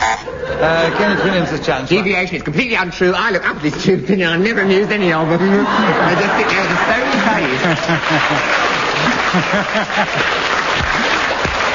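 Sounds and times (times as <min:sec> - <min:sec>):
laughter: 0:00.2 - 0:02.1, 0:03.8 - 0:11.7
speech: 0:00.2 - 0:11.1
live audience applauding: 0:05.3 - 0:11.7.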